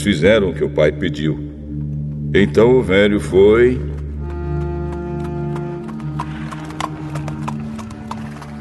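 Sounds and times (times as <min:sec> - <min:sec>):
speech: 0:00.0 - 0:01.5, 0:02.3 - 0:03.9
saddled donkey hooves clip-clopping while ridden: 0:03.4 - 0:08.5.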